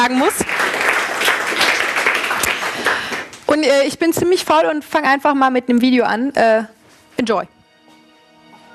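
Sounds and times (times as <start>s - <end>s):
speech: 0.0s - 0.8s, 3.6s - 7.6s
audience applause at a stage event: 0.2s - 3.4s.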